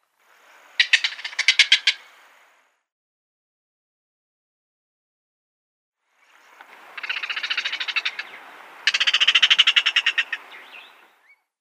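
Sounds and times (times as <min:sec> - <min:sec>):
Striated Heron calls: 0:00.8 - 0:02.2, 0:06.4 - 0:11.4.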